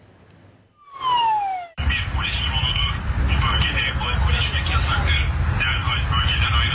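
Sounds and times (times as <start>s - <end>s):
brief descending siren-like whoop: 0.8s - 1.8s
steady low rumbling: 0.8s - 6.7s.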